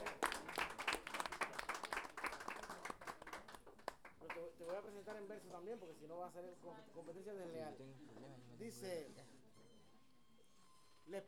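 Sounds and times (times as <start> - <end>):
audience applause at a live poetry and storytelling event: 0.0 - 4.8
speech: 5.2 - 9.4, 11.1 - 11.2.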